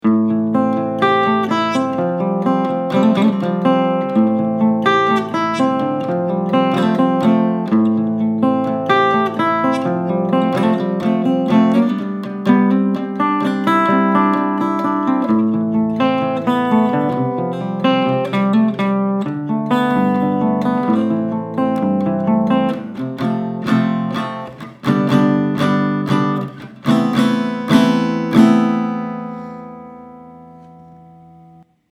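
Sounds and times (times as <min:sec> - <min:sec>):
guitar picking in A minor: 0:00.0 - 0:31.9.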